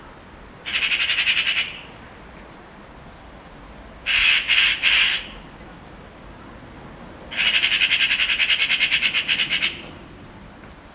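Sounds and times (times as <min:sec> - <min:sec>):
angry magpie cawing at a neighborhood cat: 0:00.7 - 0:01.9, 0:04.1 - 0:05.4, 0:07.3 - 0:09.8.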